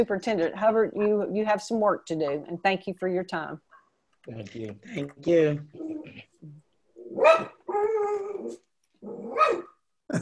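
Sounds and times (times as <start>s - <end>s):
speech: 0.0s - 10.2s
dog barking during a meeting: 7.2s - 8.2s, 9.3s - 9.7s.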